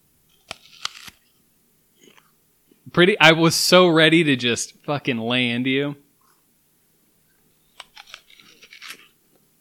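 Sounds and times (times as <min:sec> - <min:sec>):
speech: 0:02.9 - 0:06.0
crunchy bite into an apple: 0:07.8 - 0:09.2.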